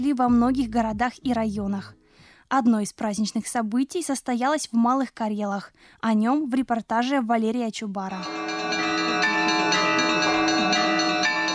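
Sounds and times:
speech: 0.0 - 8.9
church bells pealing at a museum in the Arkhangelsk region: 8.1 - 11.5.

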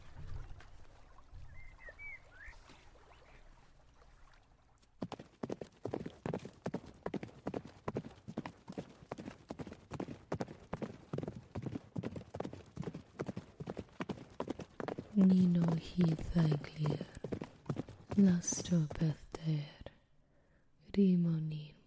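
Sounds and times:
bird chirp: 1.4 - 3.5
horse hooves clip-clopping: 4.9 - 19.0
speech: 15.2 - 17.1, 18.2 - 19.7, 21.0 - 21.4.

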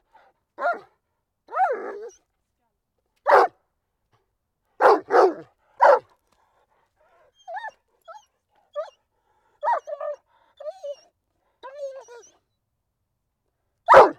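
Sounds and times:
dog barking: 0.6 - 0.9, 1.5 - 2.1, 3.2 - 3.6, 4.8 - 6.1, 13.9 - 14.1
dog whimpering and yipping quietly: 7.4 - 9.0, 9.6 - 11.0, 11.6 - 12.3.

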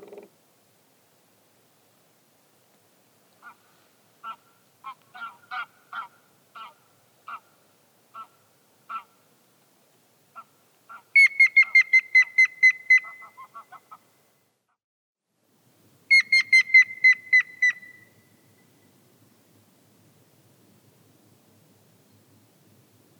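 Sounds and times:
grey-headed woodpecker Picus canus whistled call: 11.2 - 13.5, 16.1 - 18.2.

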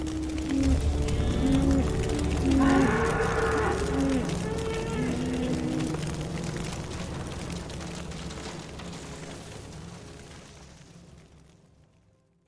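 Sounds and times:
cows mooing plaintively in a reed thicket in a forest: 0.0 - 6.2
low rumble: 0.0 - 10.1.

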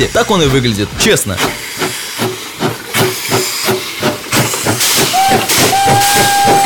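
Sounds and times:
speech: 0.0 - 1.6
steam locomotive chuffing: 0.0 - 6.6
steam locomotive whistle: 5.0 - 6.6.

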